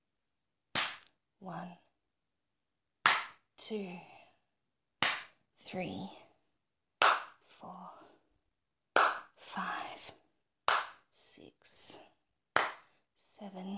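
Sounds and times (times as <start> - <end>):
woman's hand slapping her own genitals: 0.7 - 1.2, 3.0 - 3.4, 5.0 - 5.4, 7.0 - 7.4, 9.0 - 9.4, 10.7 - 11.1, 12.6 - 12.9
speech: 1.4 - 1.8, 3.6 - 4.1, 5.7 - 6.3, 7.6 - 8.0, 9.5 - 10.2, 13.4 - 13.7.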